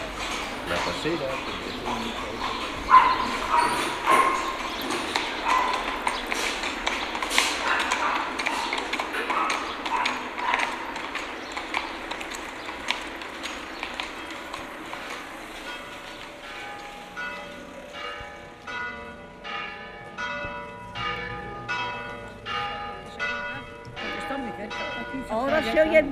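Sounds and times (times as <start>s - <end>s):
church bells ringing in a repeated peal: 0.0s - 26.1s
faint street background: 0.0s - 26.1s
speech: 0.7s - 5.0s.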